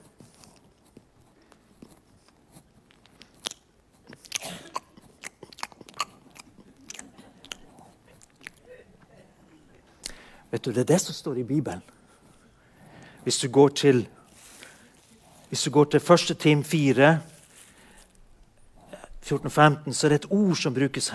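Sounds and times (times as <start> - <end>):
chewing a sunflower seed: 2.8 - 8.6
speech: 10.6 - 12.0, 13.2 - 14.2, 15.5 - 17.3, 19.3 - 21.1.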